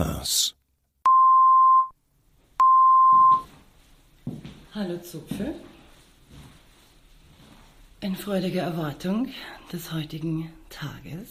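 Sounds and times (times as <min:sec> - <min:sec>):
short steady mid-pitched test beeps in left and right channels: 0:01.1 - 0:01.9, 0:02.6 - 0:03.5
speech: 0:04.8 - 0:05.7, 0:08.0 - 0:11.2.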